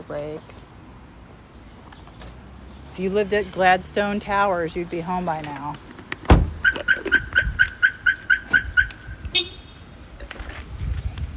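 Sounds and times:
speech: 0:00.1 - 0:00.6, 0:03.0 - 0:05.9
Volkswagen car alarm chirping: 0:06.4 - 0:09.8.

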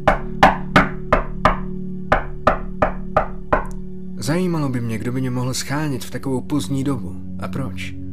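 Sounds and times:
firm knocking on a front door: 0:00.0 - 0:03.7
speech: 0:04.2 - 0:08.0.

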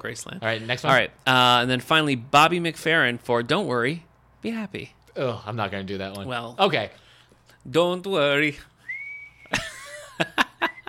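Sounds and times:
speech: 0:00.0 - 0:07.0, 0:07.6 - 0:08.7, 0:09.5 - 0:10.4
person whistling a tune: 0:08.8 - 0:09.6.

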